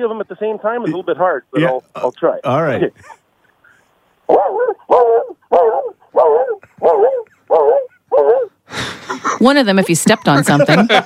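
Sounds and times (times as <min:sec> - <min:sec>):
speech: 0:00.0 - 0:03.2, 0:04.3 - 0:11.0
person imitating Siberian husky howls: 0:04.3 - 0:08.6
laughter: 0:08.8 - 0:11.0.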